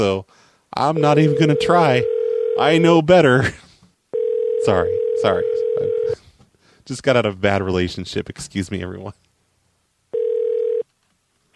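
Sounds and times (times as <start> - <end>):
speech: 0.0 - 3.7, 4.6 - 6.2, 6.9 - 9.2
telephone ringback tone on an unanswered call: 1.0 - 2.7, 4.2 - 6.2, 10.2 - 10.8.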